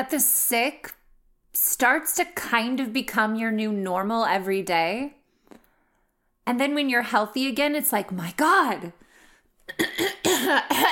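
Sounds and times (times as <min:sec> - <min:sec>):
speech: 0:00.0 - 0:05.2, 0:06.4 - 0:09.0, 0:09.7 - 0:10.9
harsh coughing from a person ill with fluid in the lungs: 0:09.7 - 0:10.9.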